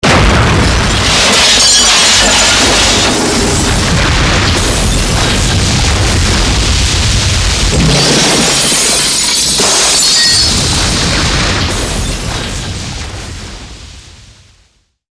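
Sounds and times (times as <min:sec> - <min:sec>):
explosive destruction sequence: 0:00.0 - 0:14.6.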